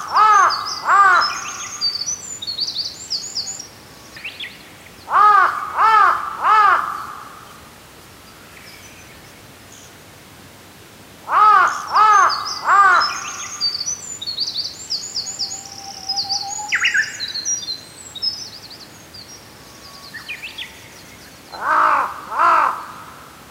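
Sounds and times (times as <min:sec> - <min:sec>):
high twittering small birds: 0:00.0 - 0:05.2, 0:11.6 - 0:22.0
large-billed crow calling in hoarse repeated caws: 0:00.1 - 0:01.6, 0:05.1 - 0:07.4, 0:11.3 - 0:13.5, 0:21.6 - 0:23.2.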